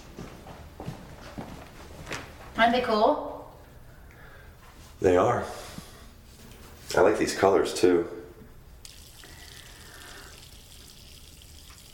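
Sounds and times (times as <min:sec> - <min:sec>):
speech: 0:02.6 - 0:03.3, 0:05.0 - 0:05.6, 0:06.9 - 0:08.2
water running from a faucet: 0:08.8 - 0:11.9.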